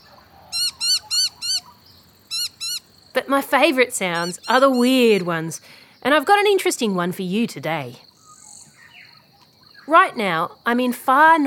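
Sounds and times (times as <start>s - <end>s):
Noisy miner calling loud ringing notes: 0.5s - 2.9s, 4.0s - 5.4s, 8.2s - 9.9s
speech: 3.2s - 8.1s, 9.9s - 11.4s.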